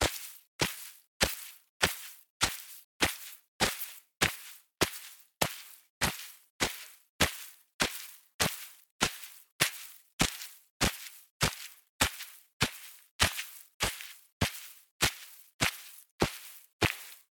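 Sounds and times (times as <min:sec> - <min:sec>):
footsteps walking on a lawn: 0:00.0 - 0:17.2.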